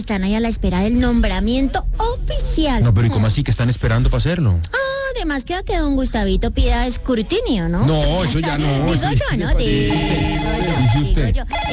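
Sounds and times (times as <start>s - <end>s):
speech: 0.0s - 11.7s
telephone ringing with a loud electronic ringtone: 8.2s - 11.7s.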